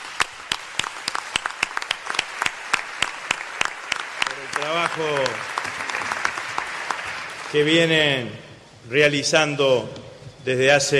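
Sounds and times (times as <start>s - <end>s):
applause from a modest group: 0.0s - 8.0s
speech: 4.6s - 5.9s, 7.5s - 10.9s.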